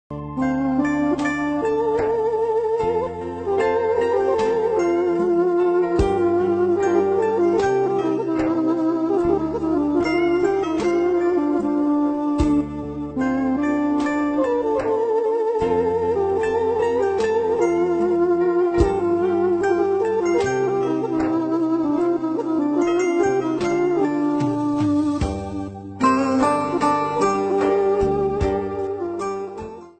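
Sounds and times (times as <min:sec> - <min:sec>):
background music: 0:00.1 - 0:29.9.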